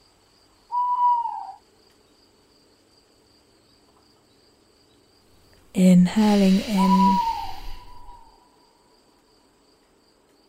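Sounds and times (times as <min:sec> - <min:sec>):
faint steady hiss: 0:00.0 - 0:10.4
owl hooting: 0:00.7 - 0:01.6, 0:05.8 - 0:08.5
speech: 0:05.8 - 0:07.3.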